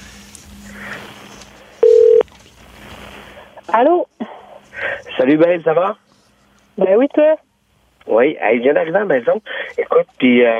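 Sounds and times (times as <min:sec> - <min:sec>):
faint hum: 0:00.0 - 0:10.5
telephone keypad tone: 0:01.8 - 0:02.2
speech: 0:03.7 - 0:04.3, 0:05.2 - 0:06.0, 0:06.8 - 0:07.4, 0:08.0 - 0:10.5.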